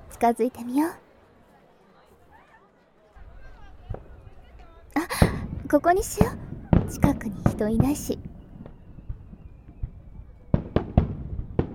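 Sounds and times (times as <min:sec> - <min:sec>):
crowd murmuring and chattering: 0:00.0 - 0:10.9
speech: 0:00.2 - 0:01.0, 0:05.7 - 0:08.3
sharp loud firework bang: 0:05.1 - 0:11.7.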